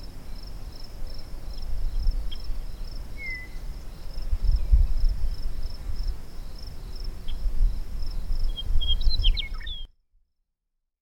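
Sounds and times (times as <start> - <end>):
faint high pulsing hiss: 0.0 - 9.5
meadowlark whistled song in sagebrush steppe: 1.4 - 9.9.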